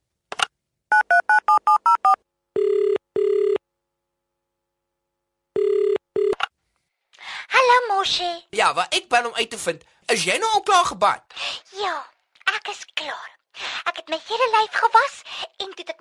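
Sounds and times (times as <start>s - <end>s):
phone ringing tone: 0.9s - 3.6s, 5.5s - 6.4s
speech: 8.0s - 12.1s, 12.7s - 15.9s.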